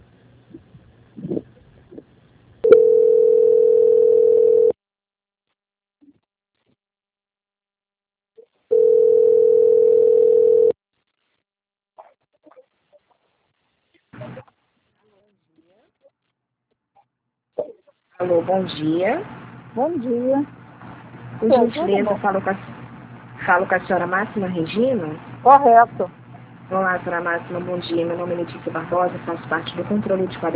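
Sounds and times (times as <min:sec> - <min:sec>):
telephone ringing tone while a call is transferred: 0:02.6 - 0:04.8, 0:08.7 - 0:10.8
speech: 0:18.5 - 0:20.6, 0:21.4 - 0:22.7, 0:23.4 - 0:30.5.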